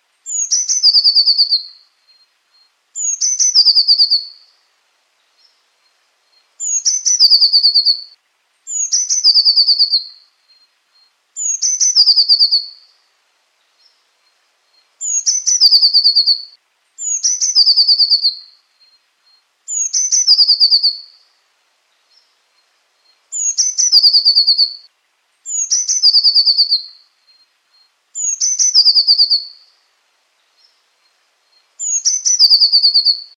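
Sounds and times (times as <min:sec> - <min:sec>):
blue tit calling: 0:00.3 - 0:04.5, 0:06.3 - 0:08.1, 0:08.7 - 0:10.6, 0:11.4 - 0:12.9, 0:14.8 - 0:21.2, 0:23.0 - 0:24.9, 0:25.5 - 0:29.7, 0:31.5 - 0:33.3.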